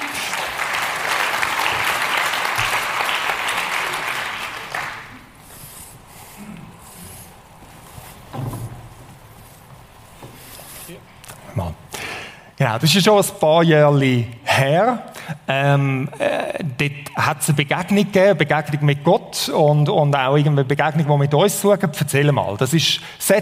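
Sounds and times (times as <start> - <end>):
audience applause welcoming a man onto the stage: 0.0 - 6.3
speech: 12.7 - 23.3.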